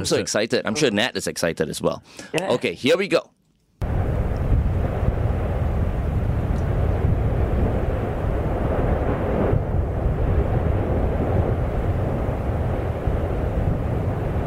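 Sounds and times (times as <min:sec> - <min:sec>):
speech: 0:00.0 - 0:03.4
wind buffeting a microphone carried by a skier speeding downhill: 0:03.8 - 0:14.4.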